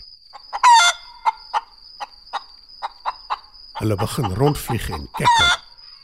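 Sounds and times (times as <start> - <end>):
brief clucking calls: 0.3 - 6.0
speech: 3.8 - 5.6
rooster crowing loudly: 5.2 - 5.7.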